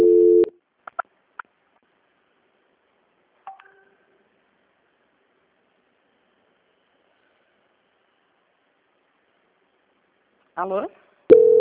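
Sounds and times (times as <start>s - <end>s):
telephone tones during a call transfer: 0.0s - 0.5s, 11.3s - 11.5s
speech: 10.6s - 11.4s.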